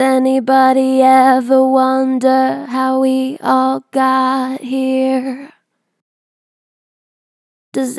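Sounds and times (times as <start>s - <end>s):
vocals with strong natural vibrato: 0.0s - 5.6s.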